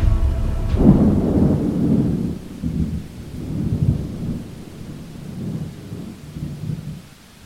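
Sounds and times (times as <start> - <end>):
deep thunder boom rumbling: 0.0 - 7.4
steady heavy downpour: 0.0 - 7.4.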